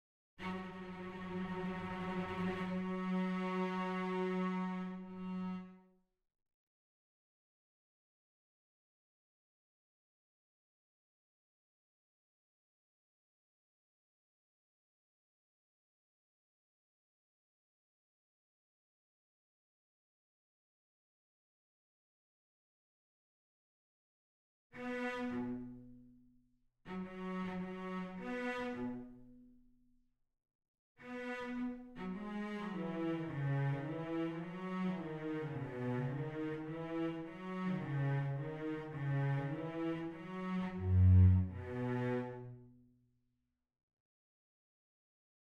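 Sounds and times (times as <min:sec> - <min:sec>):
cellos playing: 0:00.4 - 0:05.7, 0:26.9 - 0:29.2, 0:31.2 - 0:42.6.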